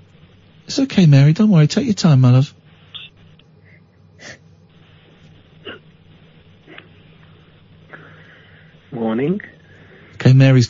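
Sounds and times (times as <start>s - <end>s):
speech: 0.8s - 2.6s
person crying with heavy ragged breathing over a telephone line: 3.6s - 4.5s.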